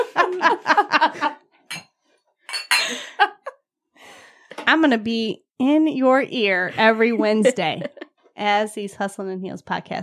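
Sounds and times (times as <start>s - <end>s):
laughter: 0.0s - 1.4s, 7.0s - 8.1s
speech: 0.2s - 1.3s, 4.7s - 10.0s
glass clattering and handling noise: 1.7s - 3.0s
glasses clinking together in a toast: 1.7s - 3.1s.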